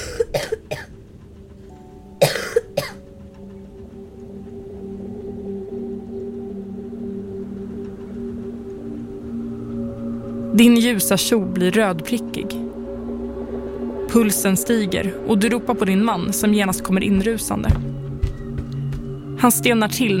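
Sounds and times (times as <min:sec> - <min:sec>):
feverish young girl coughing violently: 0:00.0 - 0:00.9, 0:02.2 - 0:03.0
steady low droning hum: 0:00.0 - 0:20.1
speech: 0:10.6 - 0:12.6, 0:14.2 - 0:18.0, 0:19.4 - 0:20.1.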